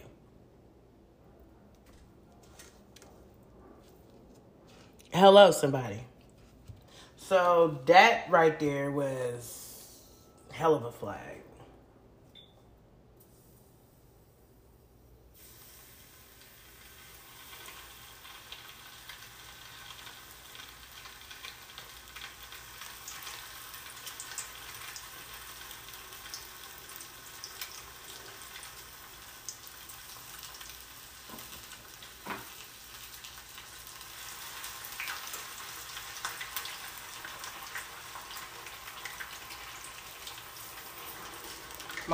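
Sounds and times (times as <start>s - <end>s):
speech: 5.2s - 6.1s, 7.3s - 9.6s, 10.6s - 11.5s
fish frying in hot grease: 15.3s - 42.1s.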